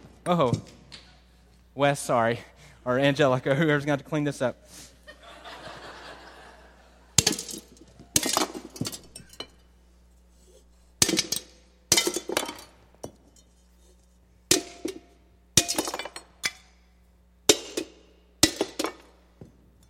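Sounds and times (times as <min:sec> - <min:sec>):
speech: 0:00.2 - 0:00.8, 0:01.8 - 0:04.9
laughter: 0:05.0 - 0:07.2
clay jars cracking and shattering: 0:07.2 - 0:09.6, 0:11.0 - 0:12.8, 0:14.5 - 0:16.7, 0:17.5 - 0:19.2.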